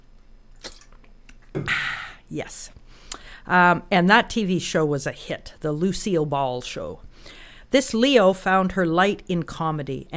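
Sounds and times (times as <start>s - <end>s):
wet mouth noises: 0.5s - 2.0s
person slurping a sip of a drink: 0.6s - 1.0s
person swallowing a drink: 0.6s - 2.2s
speech: 2.3s - 2.8s, 3.4s - 10.1s.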